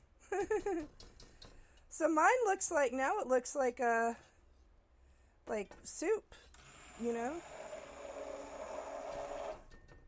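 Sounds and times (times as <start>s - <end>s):
speech: 0.3s - 1.1s, 2.0s - 4.3s, 5.5s - 7.6s
immersion blender blending food: 6.7s - 9.6s.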